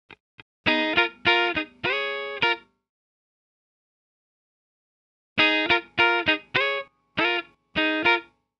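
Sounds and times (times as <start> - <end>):
pop rock electric guitar fills in D flat major: 0.7 - 2.6, 5.4 - 8.3.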